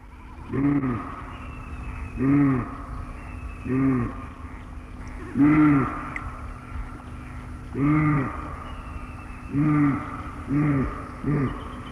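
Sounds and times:
low background hum: 0:00.0 - 0:11.8
moose giving deep moaning grunts in the forest at Marjakangas: 0:00.5 - 0:01.3, 0:02.1 - 0:03.0, 0:03.6 - 0:04.3, 0:05.2 - 0:06.2, 0:07.7 - 0:11.8.

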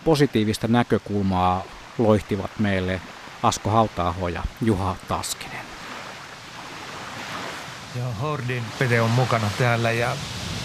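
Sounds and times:
speech: 0:00.0 - 0:05.7, 0:07.9 - 0:10.4
strong wind blowing outdoors: 0:05.7 - 0:10.6.

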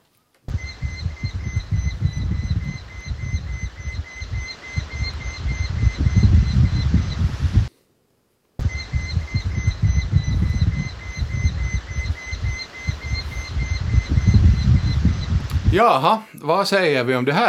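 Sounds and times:
Eurasian hobby calling in its territory: 0:00.5 - 0:07.7, 0:08.6 - 0:16.0
speech: 0:15.8 - 0:17.4.

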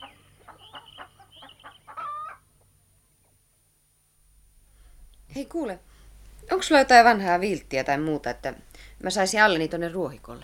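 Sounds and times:
chickens clucking in a farmyard: 0:00.0 - 0:03.4
speech: 0:05.4 - 0:05.9, 0:06.5 - 0:10.4.

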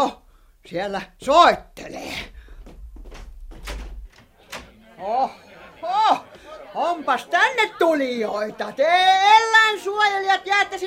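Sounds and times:
speech: 0:00.0 - 0:02.4, 0:05.0 - 0:10.8
steady low rumble: 0:01.2 - 0:04.3
door opening: 0:02.3 - 0:04.8
clunks and rattles of the door latch and frame: 0:03.1 - 0:04.7
laughter: 0:04.1 - 0:10.8.

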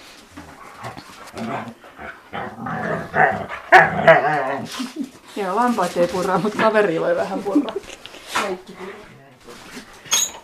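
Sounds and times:
dogs growling and whining with yelps: 0:00.5 - 0:05.0
speech: 0:00.9 - 0:09.2
dogs barking excitedly: 0:03.1 - 0:04.3.

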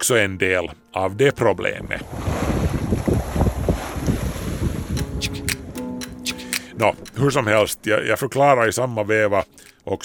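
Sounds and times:
speech: 0:00.0 - 0:02.3, 0:06.8 - 0:10.0
water sloshing against a sailboat hull: 0:01.9 - 0:05.8
gusting wind rushing past a sailboat: 0:01.9 - 0:06.0.

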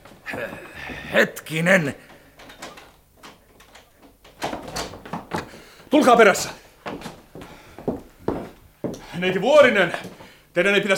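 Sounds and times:
speech: 0:01.1 - 0:02.1, 0:05.9 - 0:06.6, 0:09.2 - 0:10.9
door being opened: 0:02.4 - 0:05.9
door rattling clunks and scrapes: 0:04.4 - 0:05.9.

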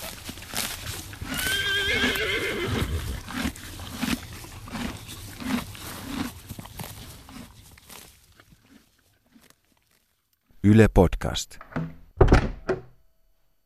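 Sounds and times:
horse hooves clip-clopping: 0:00.0 - 0:10.1
horse whinnying: 0:01.1 - 0:04.0
speech: 0:10.7 - 0:12.0.

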